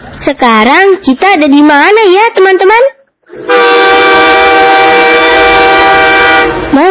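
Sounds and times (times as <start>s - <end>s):
speech: 0.3s - 4.2s
train horn blast at a railway station: 3.3s - 6.7s.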